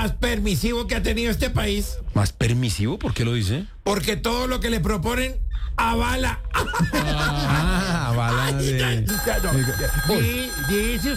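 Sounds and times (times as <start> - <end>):
low hum: 0.0 - 11.1
speech: 0.0 - 11.1
laughter: 6.5 - 10.2
telephone ringing with warbling melodic tone: 9.1 - 11.1.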